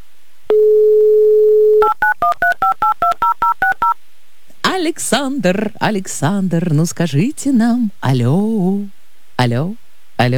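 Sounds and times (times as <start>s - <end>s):
telephone dial tone: 0.5s - 1.9s
touch-tone dialing beeps of a call: 1.8s - 4.0s
speech: 4.9s - 10.3s.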